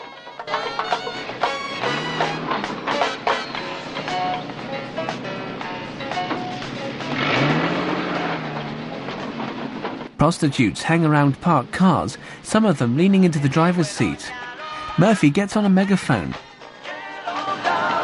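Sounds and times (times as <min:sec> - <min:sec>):
van engine accelerating outside a building: 0:00.5 - 0:14.3
clattering and knocking: 0:07.8 - 0:10.2
speech: 0:10.2 - 0:14.4, 0:15.0 - 0:16.5.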